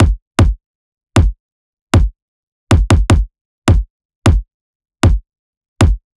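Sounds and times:
hybrid trap kit kick drum: 0.0 - 0.6, 1.2 - 1.4, 2.7 - 5.2, 5.8 - 6.0.

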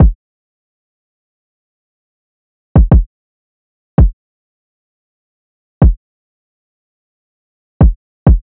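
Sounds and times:
side drum loop with kick drum: 2.8 - 3.1, 5.8 - 6.0, 7.8 - 8.4.

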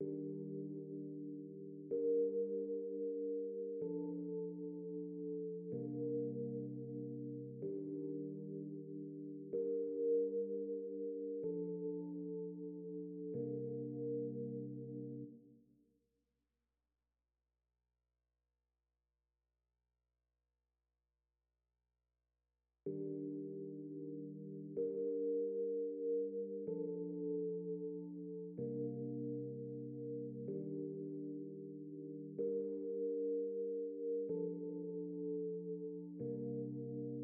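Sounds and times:
keys melody loop in G minor: 0.0 - 15.3, 22.9 - 37.2.

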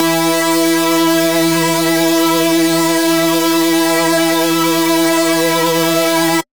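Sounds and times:
dubstep lead synth shot in E: 0.0 - 6.4.

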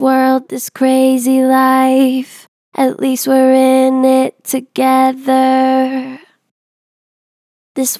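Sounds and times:
vocals with natural gentle vibrato: 0.0 - 6.3.

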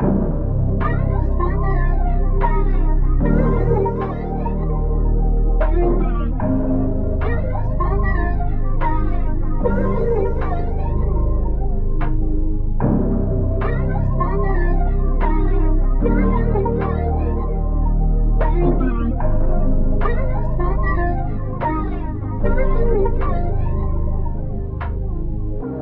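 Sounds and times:
RnB melody in C minor: 0.0 - 25.8.

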